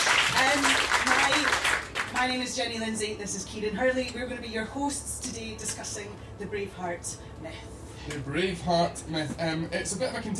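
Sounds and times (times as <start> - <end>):
crowd applauding: 0.0 - 2.2
speech: 2.2 - 10.3.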